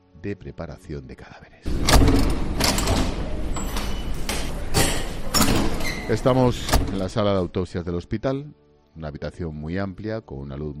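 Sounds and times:
speech: 0.2s - 2.8s, 6.1s - 10.7s
door of a hospital corpse preparation room opening: 1.7s - 7.5s
key rattling and clicking in a lock: 1.8s - 7.1s.

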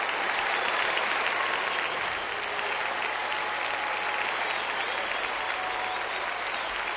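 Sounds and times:
large stadium crowd applauding in an ovation: 0.0s - 6.9s.

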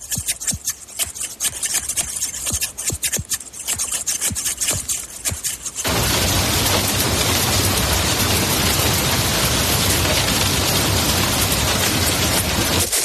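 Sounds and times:
barber scissors snipping: 0.0s - 5.9s
heavy rain: 5.9s - 12.9s.

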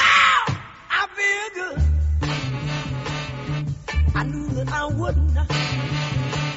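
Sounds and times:
song with forceful sung cry and steady groove: 0.0s - 2.4s, 4.0s - 6.2s
punchy repeating bass line: 1.8s - 6.5s.

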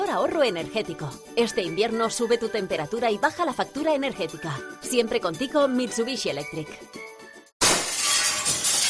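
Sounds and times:
speech: 0.1s - 7.0s
glass shattering: 7.6s - 8.8s
tinkling glass shards: 7.6s - 8.8s.

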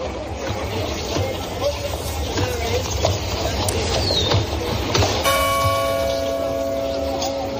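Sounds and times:
faint voices in village street: 0.0s - 7.5s
low murmur of village street: 0.0s - 7.5s
footsteps in village street: 0.4s - 7.5s
church bell striking with rich metallic tone: 5.2s - 7.5s.

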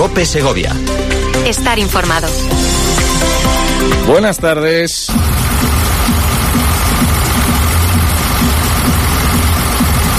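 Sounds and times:
speech: 0.1s - 6.1s
tractor engines running at a farmers' protest: 5.1s - 10.1s.

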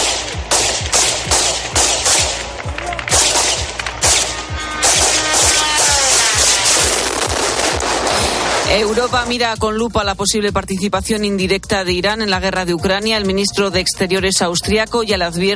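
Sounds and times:
police gunfire at an attack drone: 0.0s - 9.4s
speech: 8.8s - 15.5s.

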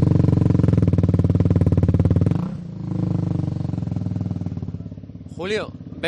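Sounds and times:
racing motorcycle engine idling and revving: 0.0s - 6.0s.

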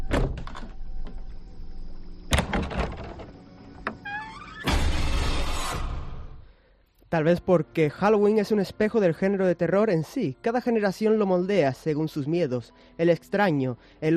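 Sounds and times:
closet door being handled and shut: 0.0s - 0.8s, 2.3s - 5.4s
speech: 7.1s - 14.1s.

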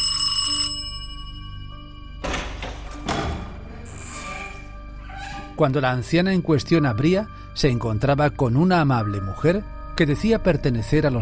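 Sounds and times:
bright electronic doorbell chime: 0.0s - 2.7s
speech: 5.6s - 11.2s.

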